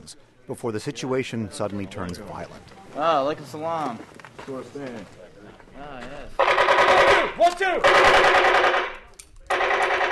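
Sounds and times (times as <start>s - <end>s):
speech: 0.1s - 5.2s, 7.3s - 8.8s
rapid gunfire bursts during a soldiers' training exercise: 6.4s - 8.9s, 9.5s - 10.1s.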